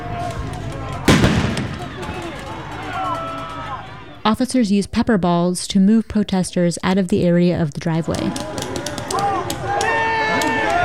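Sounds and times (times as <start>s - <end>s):
outdoor protest crowd voices murmuring: 0.0s - 4.8s, 7.3s - 10.8s
flashbang grenade blast fired by officers toward a protest crowd: 1.1s - 2.7s
speech: 4.2s - 8.6s.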